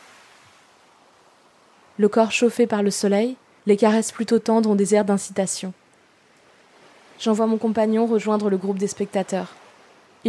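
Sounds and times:
waves breaking on a beach: 0.0s - 10.2s
speech: 2.0s - 5.8s, 7.2s - 9.6s.

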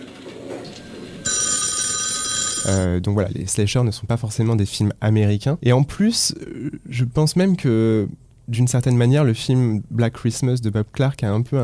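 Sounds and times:
loud shrill telephone ringing: 1.2s - 2.9s
speech: 2.6s - 11.6s.

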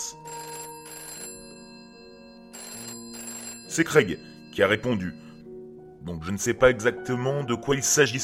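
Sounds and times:
telephone ringing with electronic tones: 0.0s - 5.6s
speech: 3.8s - 5.2s, 6.0s - 8.2s.

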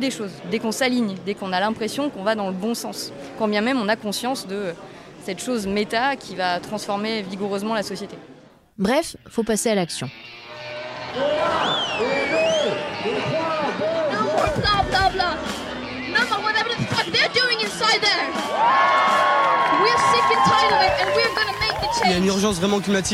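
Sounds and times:
speech: 0.0s - 10.4s, 11.1s - 12.2s, 19.8s - 23.1s
crowd of young climate protesters shouting and cheering in unison: 10.5s - 23.1s
scattered claps of climate protesters: 18.3s - 23.1s.

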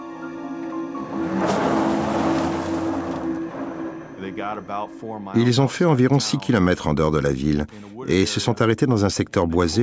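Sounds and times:
car engine starting, revving and driving away: 0.6s - 4.2s
speech: 4.4s - 9.8s.

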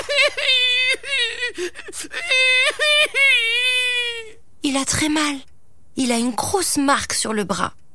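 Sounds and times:
person imitating a child crying loudly after being bitten on the arm: 0.2s - 4.4s
speech: 1.5s - 3.5s, 4.7s - 7.8s.

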